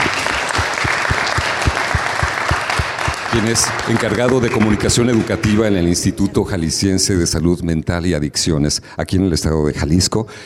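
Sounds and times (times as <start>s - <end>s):
applause for a teacher at a preparatory school: 0.0s - 6.1s
speech: 3.3s - 10.4s.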